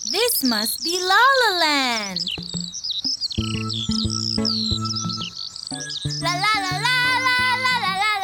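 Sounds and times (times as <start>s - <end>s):
birds chirping and warbling: 0.0s - 7.1s
speech: 0.4s - 2.5s
low musical tones pulsing: 2.3s - 8.1s.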